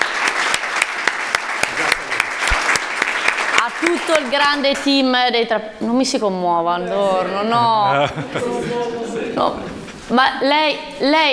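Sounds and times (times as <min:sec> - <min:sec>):
audience applauding: 0:00.0 - 0:05.0
speech: 0:03.8 - 0:11.3
laughter: 0:07.5 - 0:10.1.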